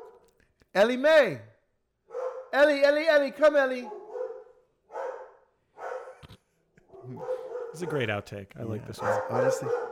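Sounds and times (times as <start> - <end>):
dog barking: 0.0 - 0.2, 2.1 - 2.6, 3.8 - 6.2, 6.9 - 8.2, 8.9 - 9.9
speech: 0.8 - 1.5, 2.5 - 4.0, 7.1 - 9.8.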